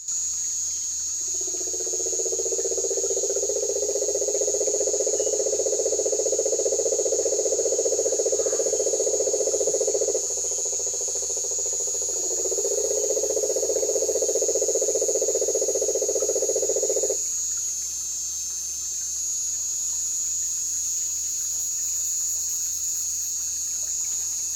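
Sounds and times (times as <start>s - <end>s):
marine toad Rhinella marina: 0.0s - 24.5s.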